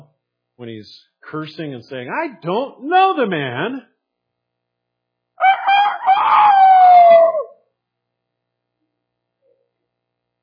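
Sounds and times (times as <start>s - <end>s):
speech: 0.6s - 3.9s
rooster crowing: 5.4s - 7.6s.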